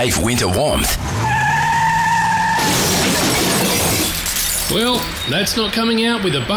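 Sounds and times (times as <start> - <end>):
speech: 0.0 - 1.3, 4.7 - 6.5
car tires screeching: 0.0 - 6.5
car crash of crunching metal and shattering debris: 0.7 - 5.9.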